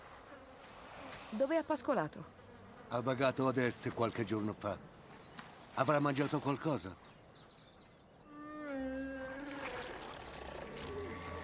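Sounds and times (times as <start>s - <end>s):
speech: 1.3s - 4.9s, 5.8s - 7.0s
drawn-out wavering groan of a sick animal: 8.3s - 11.4s
liquid spurting out of a sick animal and splashing: 9.1s - 11.4s.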